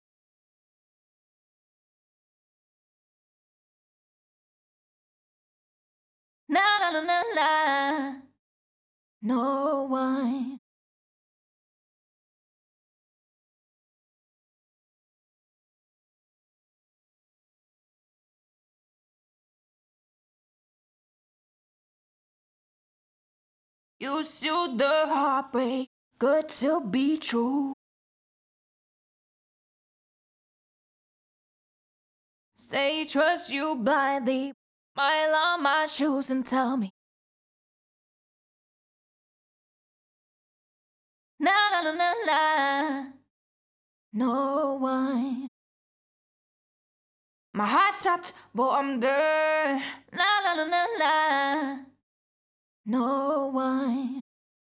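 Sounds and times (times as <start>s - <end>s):
clean pop vocal harmony in A-flat major: 6.5s - 8.4s, 9.2s - 10.6s, 24.0s - 27.8s, 32.6s - 36.9s, 41.4s - 43.3s, 44.2s - 45.5s, 47.6s - 52.0s, 52.9s - 54.2s.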